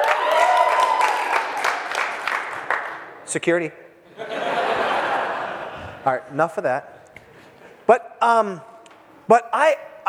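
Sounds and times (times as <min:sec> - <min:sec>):
crowd cheering and applauding: 0:00.0 - 0:02.9
speech: 0:03.3 - 0:03.8, 0:06.0 - 0:07.0, 0:07.9 - 0:08.7, 0:09.3 - 0:10.0
laughter: 0:04.1 - 0:06.0.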